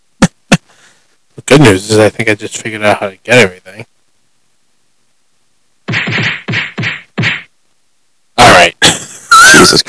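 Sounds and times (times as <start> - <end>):
speech: 1.5 - 3.9, 9.6 - 9.8
loud sharp slaps: 5.9 - 7.5.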